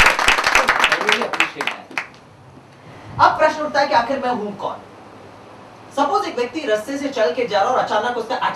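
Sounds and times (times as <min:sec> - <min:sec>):
audience applauding: 0:00.0 - 0:02.2
speech: 0:03.2 - 0:04.9, 0:06.0 - 0:08.5.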